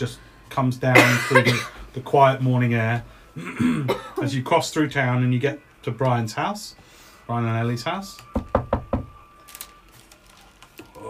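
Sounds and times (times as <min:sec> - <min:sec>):
speech: 0:00.0 - 0:08.6
firm knocks on a wooden door: 0:08.3 - 0:09.1.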